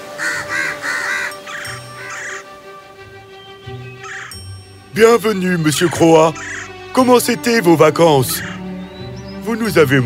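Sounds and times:
crows cawing: 0:00.1 - 0:02.6, 0:04.0 - 0:04.4, 0:06.1 - 0:06.9, 0:08.3 - 0:08.8
speech: 0:05.0 - 0:08.6, 0:09.5 - 0:10.0.

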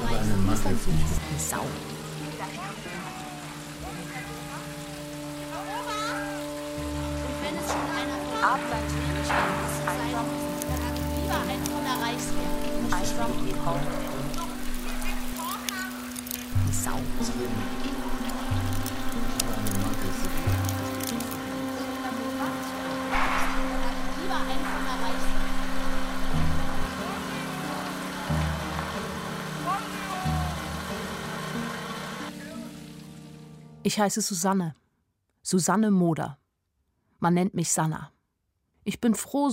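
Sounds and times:
steady rain pattering on a surface: 0:00.0 - 0:34.6
speech: 0:00.6 - 0:02.0, 0:08.4 - 0:10.5, 0:11.3 - 0:14.1, 0:16.8 - 0:18.2, 0:33.9 - 0:34.8, 0:35.4 - 0:36.4, 0:37.2 - 0:38.2, 0:38.8 - 0:39.5
sustained low droning tones: 0:06.4 - 0:15.4, 0:16.4 - 0:33.1.

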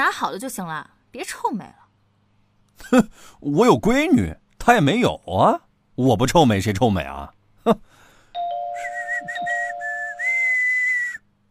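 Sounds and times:
speech: 0:00.0 - 0:01.8, 0:02.8 - 0:07.9
doorbell click: 0:08.4 - 0:09.8
man whistling while ringing a doorbell: 0:08.6 - 0:11.3.

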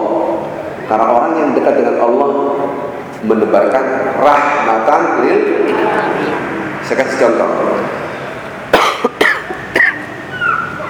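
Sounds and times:
speech: 0:00.9 - 0:08.0
person feeling unwell after long travel coughing: 0:08.8 - 0:10.0.

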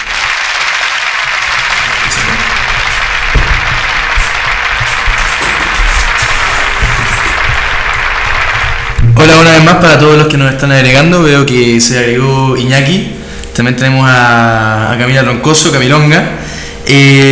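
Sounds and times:
audience applause: 0:00.0 - 0:10.0
speech: 0:09.2 - 0:17.3.

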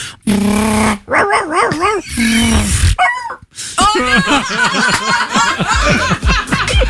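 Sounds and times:
human voice imitating a dog being run over by a car: 0:00.7 - 0:03.4
laughter: 0:03.9 - 0:06.8.

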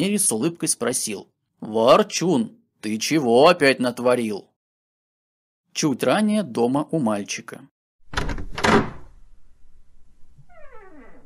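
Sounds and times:
speech: 0:00.0 - 0:04.5, 0:05.8 - 0:08.5
apartment door being opened: 0:08.0 - 0:11.2.

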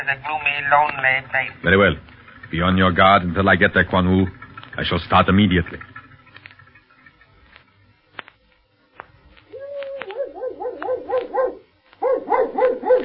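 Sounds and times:
speech: 0:00.1 - 0:05.9
scattered clicks: 0:00.6 - 0:02.6, 0:03.7 - 0:13.0
dog barking in eager yaps: 0:09.8 - 0:13.0.

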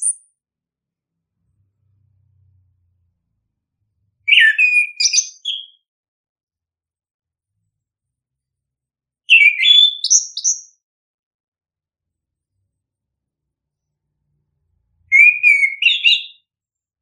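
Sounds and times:
bird singing chirps and whistles: 0:00.0 - 0:00.3, 0:04.2 - 0:05.9, 0:09.3 - 0:10.8, 0:15.1 - 0:16.5.

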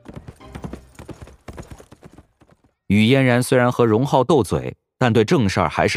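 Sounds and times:
horse hooves galloping with a rider carrying a second person: 0:00.0 - 0:02.9
speech: 0:02.9 - 0:05.9.

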